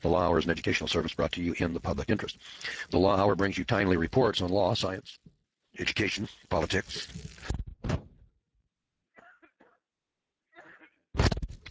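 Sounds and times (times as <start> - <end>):
speech: 0.0 - 7.6
sharp dry coughs: 9.2 - 9.8, 10.6 - 11.1.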